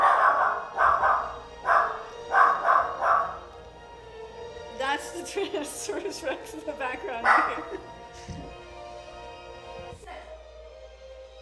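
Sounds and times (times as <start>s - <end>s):
dog barking: 0.0s - 3.5s, 7.2s - 7.8s
speech: 5.3s - 8.4s.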